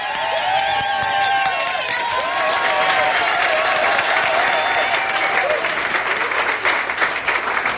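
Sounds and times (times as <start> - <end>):
large crowd applause: 0.0 - 7.7
crowd whistles: 0.1 - 1.7, 4.2 - 5.3.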